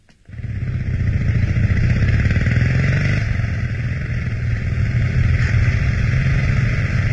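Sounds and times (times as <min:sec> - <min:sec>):
motorcycle carrying two passengers starting up and riding off: 0:00.3 - 0:07.1.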